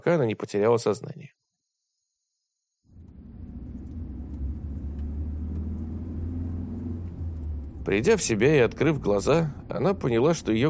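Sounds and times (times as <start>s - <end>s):
speech: 0.0s - 1.4s, 7.9s - 10.6s
car engine droning on an interstate highway: 2.9s - 10.6s
tires rolling on asphalt on an interstate highway: 2.9s - 10.6s.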